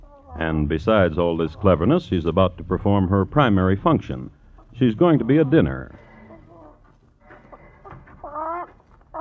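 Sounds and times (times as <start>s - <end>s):
chicken clucking with nasal squawks: 0.0s - 2.2s, 4.4s - 9.1s
light noise: 0.0s - 9.1s
speech: 0.4s - 6.0s.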